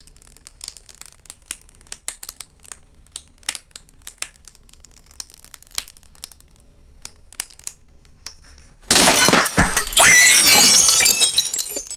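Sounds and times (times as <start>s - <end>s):
glass stressing cracking and shattering: 8.9s - 11.9s.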